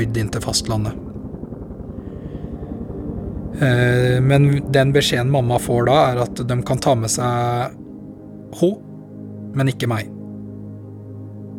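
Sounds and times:
speech: 0.0s - 1.1s, 3.6s - 7.8s, 8.5s - 8.9s, 9.5s - 10.2s
helicopter rotor thumping: 0.0s - 6.8s.

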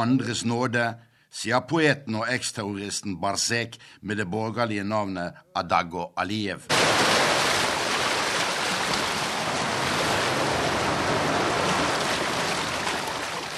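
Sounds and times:
speech: 0.0s - 7.0s
Caspian Sea waves washing against rocky beaches: 6.7s - 13.5s
wind: 6.7s - 13.5s.

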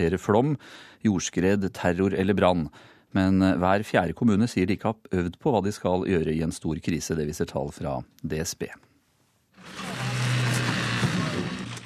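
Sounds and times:
speech: 0.0s - 8.9s
fire service chainsaw cutting through metal of collided cars: 9.6s - 11.8s.

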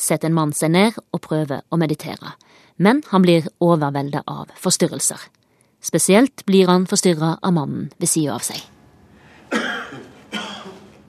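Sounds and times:
speech: 0.0s - 8.8s
soft restrained coughs: 9.5s - 11.0s.

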